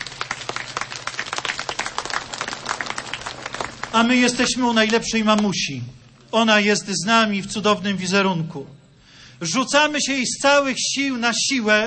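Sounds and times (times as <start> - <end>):
crowd applauding a bishop at a gathering in Studzieniczna: 0.0 - 5.6
speech: 3.9 - 8.8, 9.4 - 11.8.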